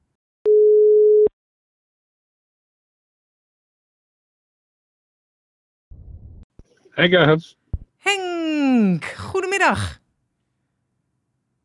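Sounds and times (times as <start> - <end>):
telephone call tone while dialing: 0.5 - 1.3
speech: 7.0 - 10.0.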